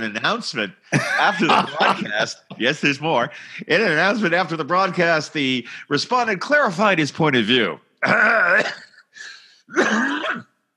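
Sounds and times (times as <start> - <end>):
speech: 0.0 - 8.9, 9.7 - 10.5
laughter: 0.9 - 4.0
person clearing throat: 8.0 - 10.6.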